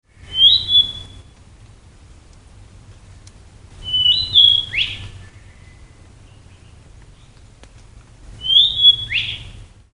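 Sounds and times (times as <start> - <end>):
kibitaki calling: 0.1 - 1.4, 3.8 - 7.5, 8.3 - 9.7.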